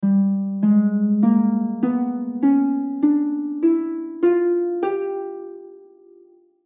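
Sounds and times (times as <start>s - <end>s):
harp: 0.0s - 6.5s.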